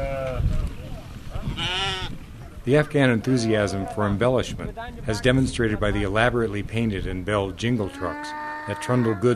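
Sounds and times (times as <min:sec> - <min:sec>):
sheep bleating: 0:01.6 - 0:02.1, 0:07.9 - 0:09.3
speech: 0:02.6 - 0:09.3.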